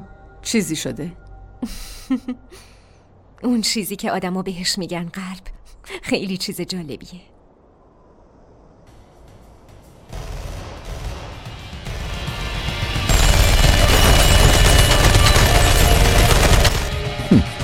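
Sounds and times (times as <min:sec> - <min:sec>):
speech: 0:00.4 - 0:02.7, 0:03.4 - 0:07.3
sustained barrage of rapid gunfire: 0:10.1 - 0:12.4, 0:13.0 - 0:17.5.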